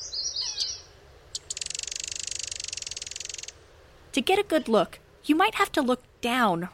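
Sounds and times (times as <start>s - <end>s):
Common Yellowthroat singing: 0.0s - 4.9s
speech: 4.2s - 6.7s.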